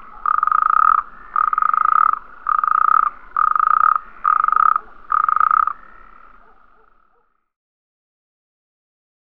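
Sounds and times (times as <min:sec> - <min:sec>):
natterjack toad Bufo calamita rasping pulsed trills: 0:00.0 - 0:06.0.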